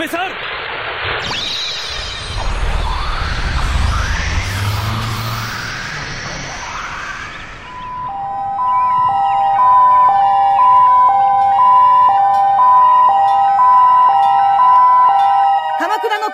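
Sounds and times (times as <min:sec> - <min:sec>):
police car siren alternating between two tones: 0:01.2 - 0:16.3
faint low rumble: 0:01.9 - 0:10.1.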